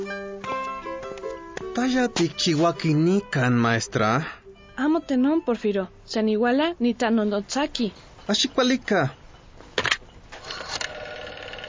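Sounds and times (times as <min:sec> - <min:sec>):
low hum: 0:00.0 - 0:11.6
soft steady telephone tones: 0:00.0 - 0:11.6
speech: 0:01.8 - 0:09.2
telephone ringing: 0:08.3 - 0:11.6.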